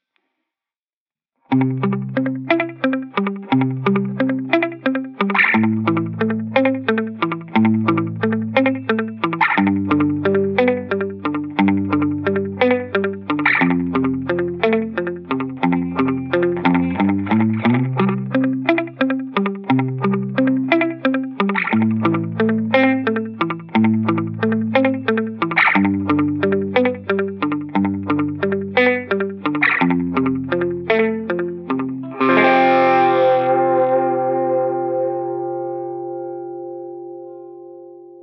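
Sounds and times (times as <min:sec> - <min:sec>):
lofi music: 0:01.5 - 0:36.9.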